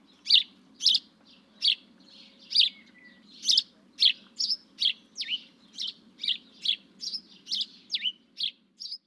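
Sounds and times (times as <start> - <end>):
house sparrow Passer domesticus chirping: 0.1 - 9.0.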